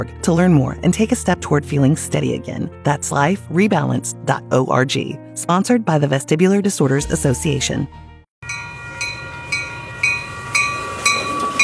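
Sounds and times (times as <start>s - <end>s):
speech: 0.0s - 8.1s
train rolling along rails: 8.4s - 11.6s.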